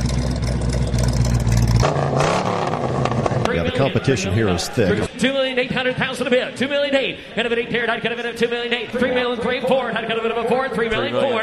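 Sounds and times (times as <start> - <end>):
Mustang V8 engine revving: 0.0 - 3.9
speech: 3.8 - 11.4.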